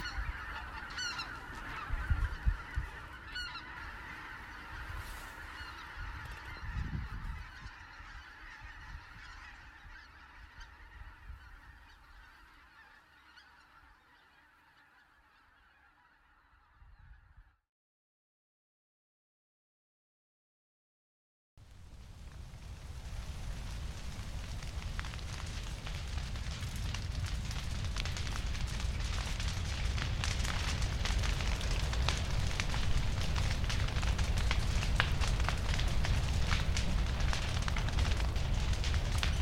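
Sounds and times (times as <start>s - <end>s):
low rumbling wind: 0.0s - 12.4s, 21.6s - 39.3s
large flock of migratory geese honking at a natural wetland: 0.0s - 17.4s.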